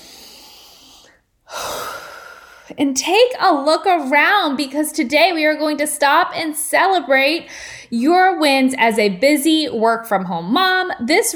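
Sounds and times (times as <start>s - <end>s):
person breathing in deeply: 0.0s - 2.7s
speech: 2.7s - 11.3s.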